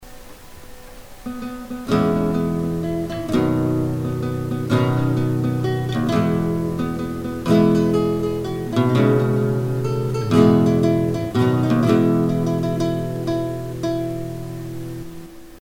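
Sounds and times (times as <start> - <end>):
guitar melody: 0.8 - 15.6.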